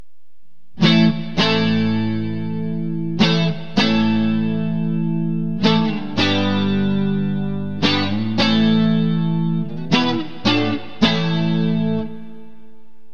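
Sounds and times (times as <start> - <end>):
guitar clips, clean neck pickup: 0.8 - 12.6.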